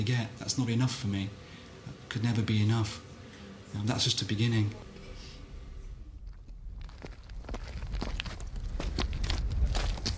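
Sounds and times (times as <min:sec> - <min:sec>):
speech: 0:00.0 - 0:01.4, 0:02.1 - 0:03.1, 0:03.7 - 0:04.8
low rumble of wind: 0:04.7 - 0:10.1
footsteps crunching along a gravelly mountain footpath: 0:06.2 - 0:10.1.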